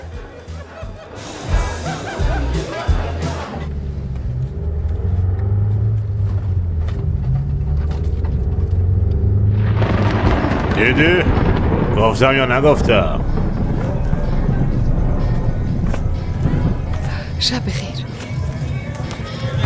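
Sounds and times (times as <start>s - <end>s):
people chattering and laughing: 0.0s - 4.7s, 13.2s - 19.6s
car engine humming as the vehicle drives: 0.1s - 19.6s
speech: 10.9s - 11.3s, 12.0s - 13.3s, 17.4s - 17.9s.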